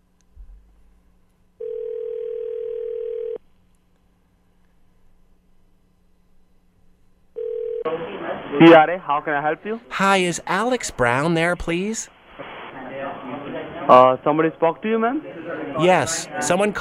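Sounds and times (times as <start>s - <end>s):
ringback tone of an outgoing phone call: 1.6s - 3.4s, 7.4s - 7.9s
speech: 8.6s - 12.2s, 13.9s - 16.7s.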